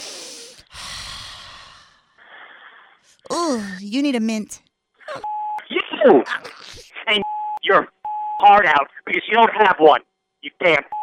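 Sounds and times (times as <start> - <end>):
heavy breathing into phone: 0.0 - 3.1
speech: 3.4 - 5.3, 6.0 - 11.0.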